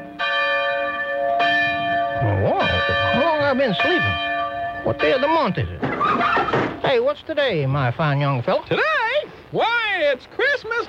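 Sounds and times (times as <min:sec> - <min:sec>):
town church bells ringing on a bright morning: 0:00.0 - 0:06.8
speech: 0:02.2 - 0:10.8.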